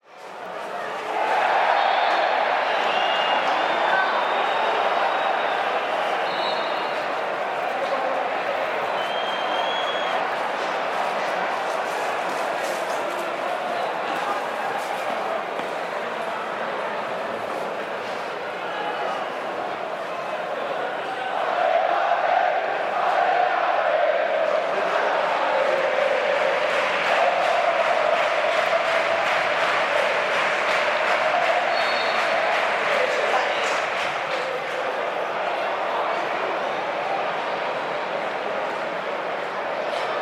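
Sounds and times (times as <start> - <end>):
football crowd walla: 0.0 - 40.1
upset football crowd chanting at a soccer game: 21.1 - 33.9.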